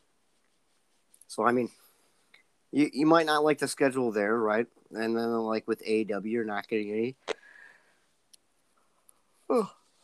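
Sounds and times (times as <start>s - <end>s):
speech: 1.3s - 1.8s, 2.7s - 7.4s, 9.5s - 9.8s
person yawning: 9.5s - 9.8s.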